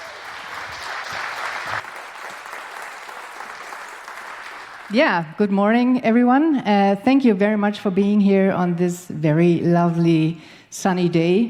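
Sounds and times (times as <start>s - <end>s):
audience in a tent applauding: 0.0s - 5.0s
speech: 4.9s - 11.4s.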